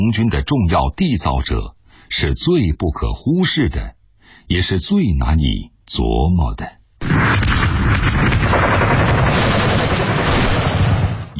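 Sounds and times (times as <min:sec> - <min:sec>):
speech: 0:00.0 - 0:09.7
continuous heavy rumble of artillery: 0:07.0 - 0:11.3
rapid bursts of gunfire in battle: 0:07.0 - 0:11.3.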